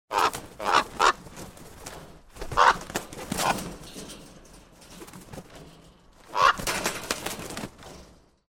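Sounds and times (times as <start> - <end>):
crow calling in a cage: 0.1 - 1.2, 2.5 - 2.9, 6.2 - 6.6.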